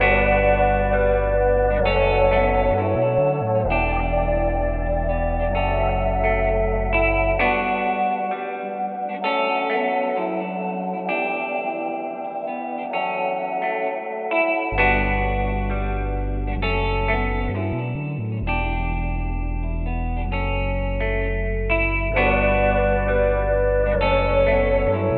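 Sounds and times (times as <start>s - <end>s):
sad guitar loop: 0.0s - 25.1s.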